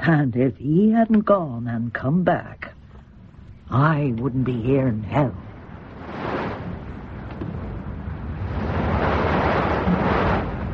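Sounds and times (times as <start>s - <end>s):
speech: 0.0s - 2.7s, 3.7s - 5.5s
choppy sea waves: 4.5s - 10.7s
gusting wind: 5.3s - 10.7s.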